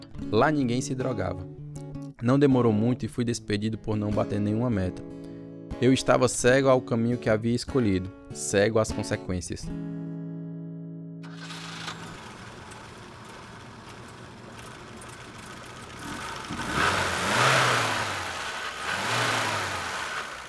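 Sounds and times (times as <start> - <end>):
speech: 0.3 - 1.6, 2.2 - 5.2, 5.8 - 10.0
homemade car engine being tested and revving: 11.2 - 20.4.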